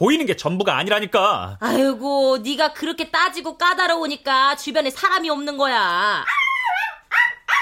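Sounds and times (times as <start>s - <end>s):
speech: 0.0s - 6.8s
dog barking: 6.2s - 7.6s.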